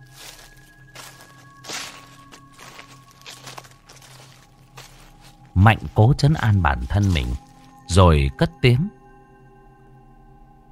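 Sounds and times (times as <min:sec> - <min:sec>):
soft scuffing footsteps outside: 0:00.0 - 0:07.8
speech: 0:05.6 - 0:09.0.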